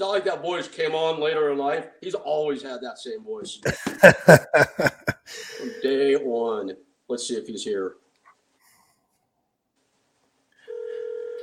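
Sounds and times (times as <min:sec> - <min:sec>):
speech: 0:00.0 - 0:08.0
laughter: 0:03.7 - 0:05.8
ringback tone of an outgoing phone call: 0:10.7 - 0:11.4.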